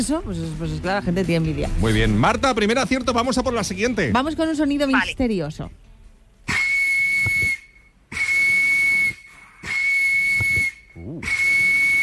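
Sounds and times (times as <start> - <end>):
speech: 0.0 - 5.9
out-of-tune referee's whistle blasts: 6.5 - 12.0.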